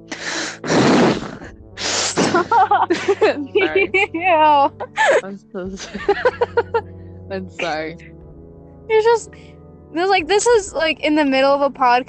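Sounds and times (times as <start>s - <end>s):
breathy voiced gasps and murmurs: 0.0s - 2.5s
heavy breathing into a microphone: 0.1s - 2.2s
laughter: 2.2s - 5.2s, 5.8s - 6.8s
speech: 2.4s - 8.2s, 8.9s - 12.0s.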